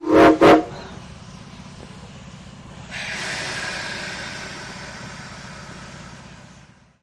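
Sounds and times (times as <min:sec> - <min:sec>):
freight train horn: 0:00.0 - 0:01.0.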